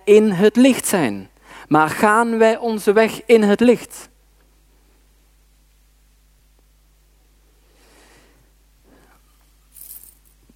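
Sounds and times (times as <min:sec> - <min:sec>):
speech: 0:00.1 - 0:04.1
bunch of keys jingling: 0:09.4 - 0:10.5.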